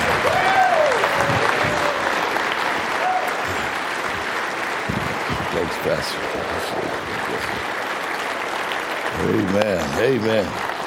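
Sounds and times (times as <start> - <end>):
faint cheers and whistles: 0.0 - 2.3, 2.9 - 3.7
large church audience clapping: 0.0 - 10.8
speech: 9.5 - 10.7.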